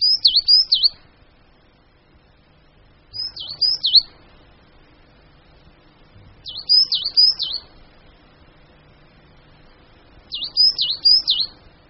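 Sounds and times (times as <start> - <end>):
coal tit calling in thin high rapidly repeated notes: 0.0 - 1.0, 3.1 - 4.2, 6.4 - 7.8, 10.3 - 11.7.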